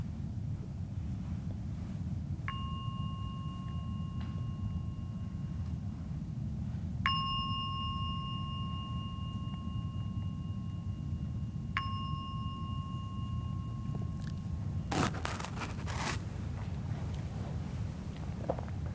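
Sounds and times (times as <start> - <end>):
low steady rumble: 0.0 - 18.9
meditation gong ringing: 2.5 - 15.0.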